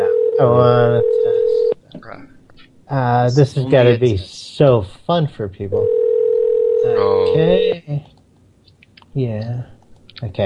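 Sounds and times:
electronic telephone ringing: 0.0s - 1.7s, 5.8s - 7.0s
speech: 0.4s - 1.4s, 2.9s - 6.0s, 6.8s - 8.2s, 9.2s - 10.4s.

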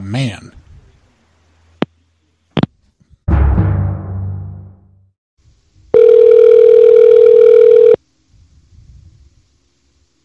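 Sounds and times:
telephone dial tone: 6.0s - 8.0s.

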